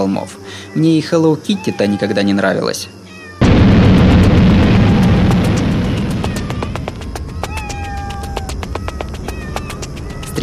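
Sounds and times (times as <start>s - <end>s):
speech: 0.0s - 3.0s
cat yowling aggressively: 0.5s - 3.4s, 4.5s - 10.4s
dense rattling buzz of whirring wings: 3.4s - 10.4s.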